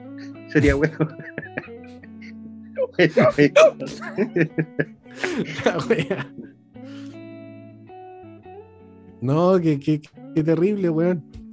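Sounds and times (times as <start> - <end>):
people chuckling and laughing: 0.2 - 6.5
speech: 0.5 - 1.7, 3.0 - 6.5, 9.2 - 11.4
hiccups: 2.2 - 4.1.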